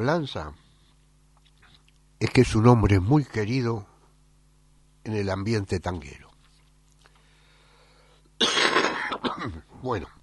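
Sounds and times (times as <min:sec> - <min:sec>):
speech: 0:00.0 - 0:00.6, 0:02.2 - 0:03.9, 0:05.0 - 0:06.3, 0:09.2 - 0:10.2
harsh cough: 0:08.4 - 0:09.7.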